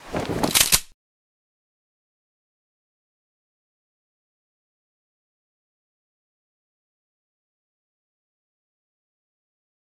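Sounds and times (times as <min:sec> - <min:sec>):
shotgun being drawn: 0:00.0 - 0:01.0.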